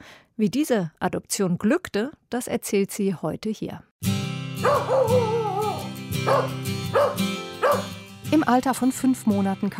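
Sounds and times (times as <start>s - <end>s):
speech: 0.0s - 5.4s, 6.2s - 9.7s
young shepherd mix puppy street dog from Romania barking and yipping: 4.6s - 8.0s.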